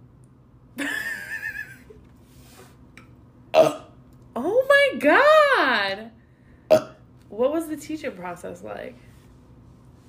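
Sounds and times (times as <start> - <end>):
person burping on command: 3.5 - 4.0, 6.7 - 7.0
speech: 5.0 - 6.1, 7.4 - 9.1.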